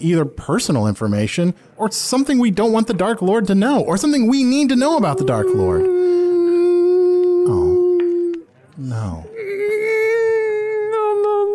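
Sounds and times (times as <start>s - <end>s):
speech: 0.0s - 6.1s, 8.8s - 9.3s
person crying and sobbing: 4.8s - 8.4s, 9.2s - 11.5s.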